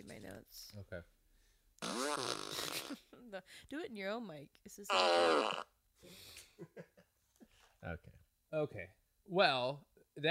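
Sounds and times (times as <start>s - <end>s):
speech: 0.4s - 1.2s, 3.3s - 6.9s, 7.8s - 10.2s
fart noise: 1.8s - 3.0s, 4.9s - 5.8s.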